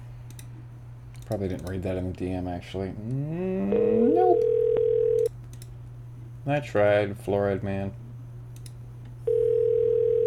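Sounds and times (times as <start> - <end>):
speech: 1.3 - 4.6, 6.4 - 8.0
telephone dial tone while dialing an extension: 4.0 - 5.3, 9.3 - 10.2.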